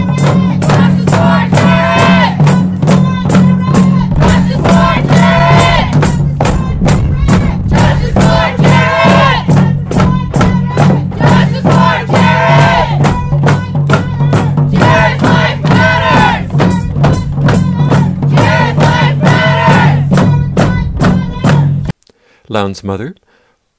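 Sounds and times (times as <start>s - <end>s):
large crowd shouting angrily in a chant: 0.1s - 13.1s, 14.7s - 20.1s
steady low rumble: 0.7s - 21.9s
speech: 22.6s - 23.2s.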